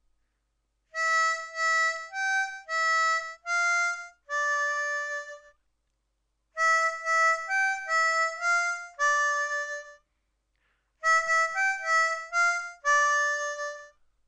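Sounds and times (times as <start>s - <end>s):
harmonica chorus fill: 0.9s - 5.6s, 6.6s - 14.0s.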